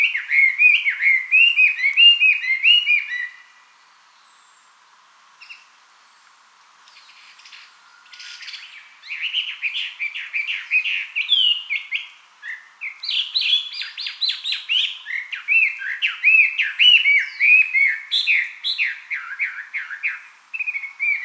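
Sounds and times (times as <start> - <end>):
Chinese hwamei singing varied whistled phrases: 0.0 - 4.8, 5.4 - 21.2.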